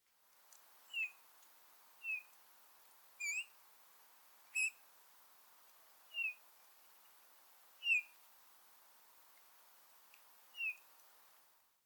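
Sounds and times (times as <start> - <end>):
Eurasian bullfinch calling soft short piping notes at Sørborg: 0.9 - 1.2, 2.0 - 2.3, 3.2 - 3.6, 4.5 - 4.8, 6.1 - 6.4, 7.8 - 8.2, 10.5 - 10.9.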